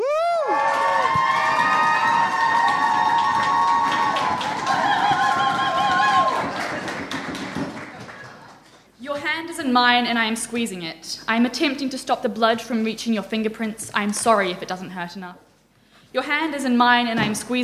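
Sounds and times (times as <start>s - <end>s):
live audience clapping: 0.4s - 9.0s
speech: 9.7s - 15.5s, 16.1s - 17.6s.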